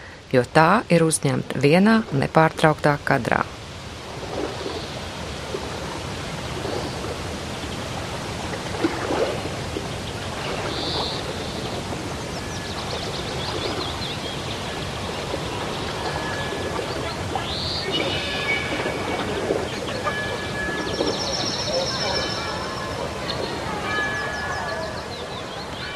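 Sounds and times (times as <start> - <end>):
gentle waves of a river lapping and washing: 0.0 - 25.9
speech: 0.3 - 3.6
small water splashes: 3.4 - 25.9
faint high chirps: 15.8 - 25.9.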